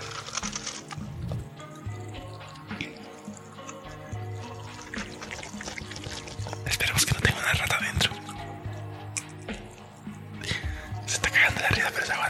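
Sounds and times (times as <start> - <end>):
Dr Pepper soda pouring from a can: 0.0 - 7.5
faint fizzy hiss of soda: 0.0 - 12.2.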